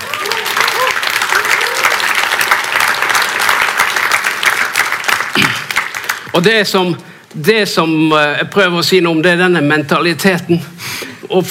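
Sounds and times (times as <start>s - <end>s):
crowd applause filling the room: 0.0s - 6.4s
speech: 6.4s - 11.4s.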